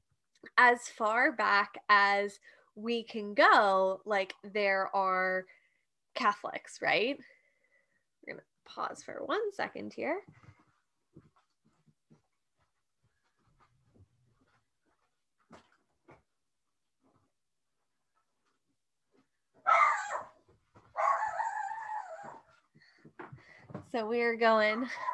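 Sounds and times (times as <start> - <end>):
speech: 0.5 - 5.6, 6.2 - 7.3, 8.2 - 10.4, 23.9 - 25.1
faint clicks and taps: 10.2 - 19.6
dog barking at the door: 19.6 - 22.4, 24.7 - 25.1.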